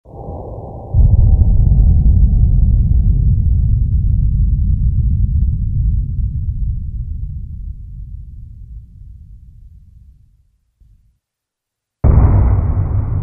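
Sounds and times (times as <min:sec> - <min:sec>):
thunderstorm: 0:00.1 - 0:09.4, 0:12.0 - 0:13.2.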